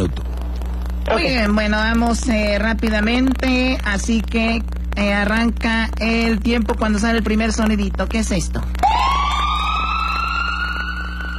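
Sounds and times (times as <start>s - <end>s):
speech: 1.1s - 8.8s
ambulance or police siren wailing: 8.8s - 11.3s.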